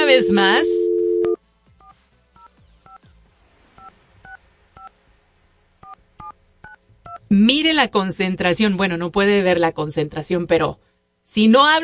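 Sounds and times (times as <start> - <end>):
telephone keypad tones as a number is dialed: 0.0 - 1.4
speech: 0.2 - 0.8, 7.3 - 11.8.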